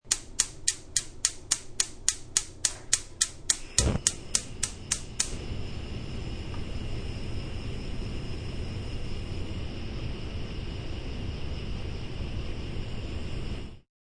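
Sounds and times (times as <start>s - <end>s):
stovetop burner igniter clicks: 0.0s - 5.4s
stovetop gas burner flame: 0.0s - 13.8s.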